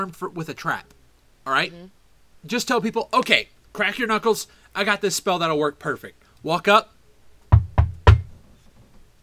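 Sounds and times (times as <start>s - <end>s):
speech: 0.0s - 6.9s
firm knocks on a door: 7.5s - 8.4s.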